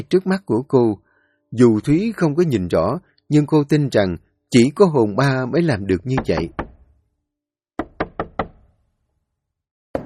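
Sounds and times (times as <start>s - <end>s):
speech: 0.0s - 6.6s
knocking on a door: 6.1s - 6.9s, 7.8s - 8.7s.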